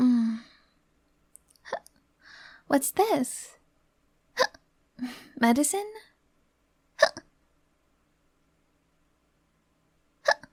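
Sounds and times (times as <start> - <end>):
speech: 2.7 - 3.6, 5.0 - 6.1
hiccups: 4.4 - 4.6, 7.0 - 7.3, 10.2 - 10.5.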